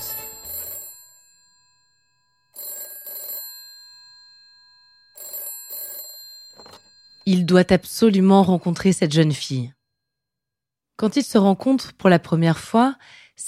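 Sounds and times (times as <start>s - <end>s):
telephone ringing with metallic bell tones: 0.0s - 9.5s
speech: 7.3s - 9.8s, 11.0s - 13.4s.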